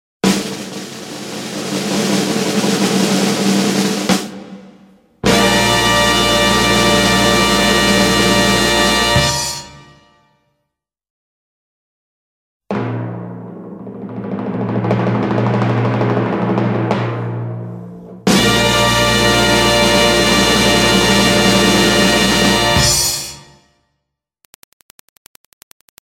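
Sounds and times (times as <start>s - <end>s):
drum roll: 0.2s - 9.6s, 12.7s - 23.3s.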